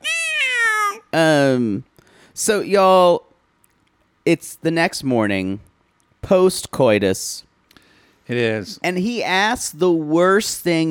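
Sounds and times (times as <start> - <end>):
person imitating a cat meowing: 0.0 - 1.2
speech: 1.1 - 3.2, 4.2 - 7.5, 8.3 - 10.8.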